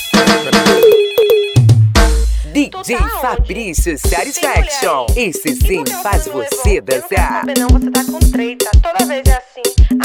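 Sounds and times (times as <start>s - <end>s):
phone ringing with an incoming call, electronic ringtone: 0.0s - 1.8s
speech: 2.8s - 10.0s.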